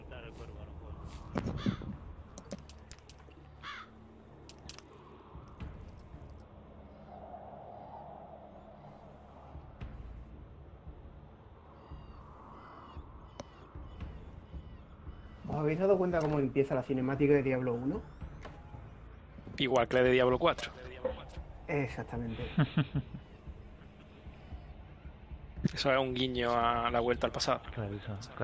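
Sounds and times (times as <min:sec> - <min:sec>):
dark rumbling cinematic soundscape: 0:00.0 - 0:28.4
crow cawing: 0:01.4 - 0:02.6, 0:03.4 - 0:04.7, 0:11.7 - 0:15.5
speech: 0:15.7 - 0:18.2, 0:19.6 - 0:20.9, 0:21.7 - 0:23.1, 0:25.8 - 0:28.4
laughter: 0:22.3 - 0:24.4.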